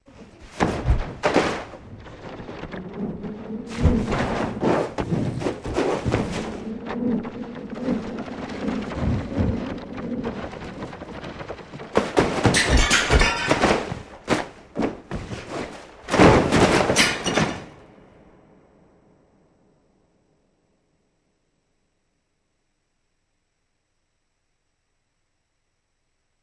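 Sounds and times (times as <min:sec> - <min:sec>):
books flying through air: 0:00.0 - 0:17.8.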